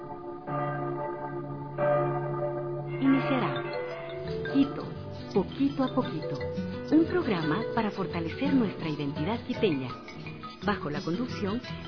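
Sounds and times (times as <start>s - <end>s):
church bells ringing in Quito: 0.0s - 9.1s
speech: 5.4s - 11.8s.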